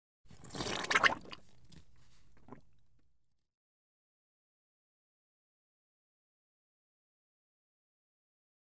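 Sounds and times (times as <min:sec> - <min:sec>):
comedic slurp: 0:00.3 - 0:02.8.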